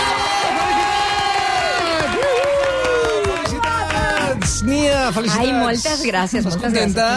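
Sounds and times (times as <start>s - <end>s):
large crowd cheering with shouts and whoops: 0.0s - 4.4s
large crowd applauding: 0.0s - 5.2s
speech: 4.6s - 7.1s.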